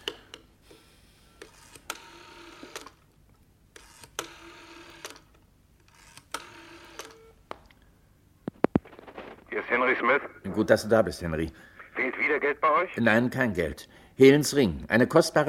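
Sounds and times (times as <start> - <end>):
telephone being dialled: 0.7 - 3.0, 3.8 - 7.3
speech: 9.7 - 11.7, 12.4 - 15.4.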